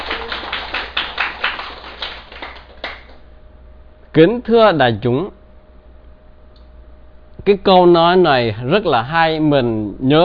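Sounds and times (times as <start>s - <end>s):
weak audience applause at a Buddhist talk: 0.0s - 3.2s
speech: 4.2s - 5.4s, 7.4s - 10.2s.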